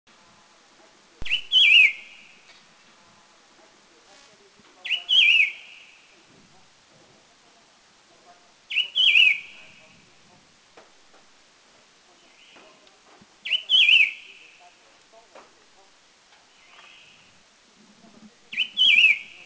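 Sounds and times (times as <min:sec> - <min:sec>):
White-whiskered Laughingthrush calling in Taiwan: 0:01.2 - 0:02.4, 0:04.8 - 0:06.2, 0:08.7 - 0:10.0, 0:13.4 - 0:14.8, 0:18.5 - 0:19.4.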